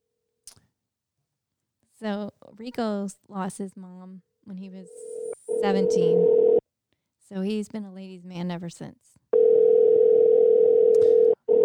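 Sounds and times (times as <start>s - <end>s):
speech: 2.0s - 6.6s, 7.3s - 9.2s
telephone ringback tone on an outgoing call: 5.0s - 6.6s, 9.4s - 11.6s.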